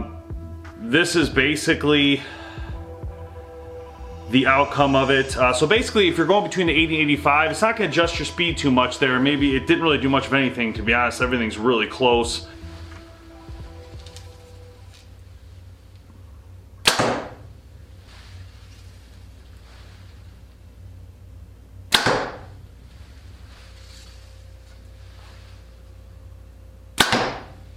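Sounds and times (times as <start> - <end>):
low steady hum: 0.0 - 27.7
speech: 0.9 - 2.4, 4.3 - 12.5
arrows shot from a compound bow: 16.8 - 17.5, 21.9 - 22.6, 27.0 - 27.6.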